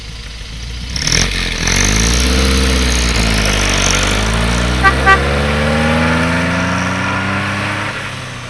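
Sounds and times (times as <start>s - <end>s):
car driving away: 0.0s - 8.4s
car horn: 4.7s - 5.6s.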